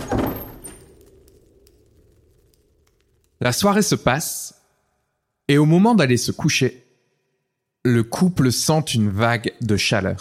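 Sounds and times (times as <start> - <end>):
door being shut with a dull thud: 0.0 - 0.9
speech: 3.4 - 4.6, 5.5 - 6.8, 7.8 - 10.1.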